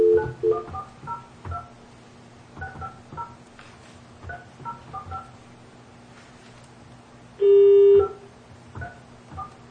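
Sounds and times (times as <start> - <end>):
long steady telephone tone: 0.0 - 0.7, 7.4 - 8.3.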